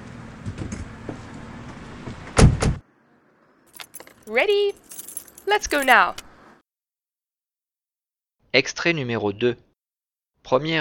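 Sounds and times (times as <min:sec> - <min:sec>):
car door shutting with a loud thud: 0:02.0 - 0:02.8
speech: 0:04.3 - 0:04.9, 0:05.5 - 0:06.2, 0:08.5 - 0:09.6, 0:10.4 - 0:10.7.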